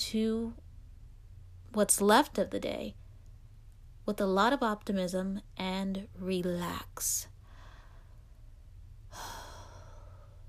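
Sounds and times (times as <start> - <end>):
quiet steady low hum: 0.0 - 10.4
speech: 0.1 - 0.6, 1.7 - 3.0, 4.1 - 7.3
person taking a deep breath: 7.4 - 8.4, 9.1 - 10.4.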